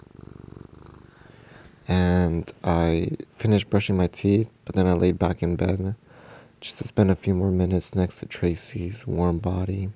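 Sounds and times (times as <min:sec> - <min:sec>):
cat purring: 0:00.0 - 0:02.6
speech: 0:01.9 - 0:09.9.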